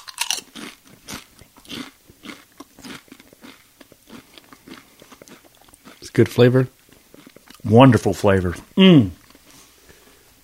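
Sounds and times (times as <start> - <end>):
crunching a tortilla chip topped with hot sauce: 0.0 - 6.3
crackly chewing of tortilla chip: 0.0 - 7.8, 8.6 - 9.7
speech: 6.2 - 6.8, 7.7 - 9.2.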